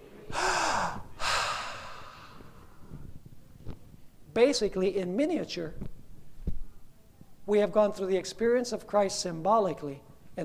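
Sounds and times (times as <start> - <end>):
person gasping for air after surfacing from water: 0.3 - 3.0
person breathing after surfacing from water: 0.3 - 3.1
speech: 4.4 - 5.8, 7.5 - 10.4.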